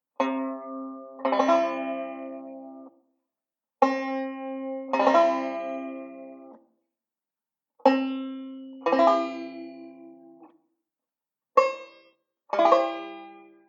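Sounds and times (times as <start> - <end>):
banjo playing C chords: 0.2 - 3.0, 3.8 - 6.7, 7.8 - 10.6, 11.6 - 13.6.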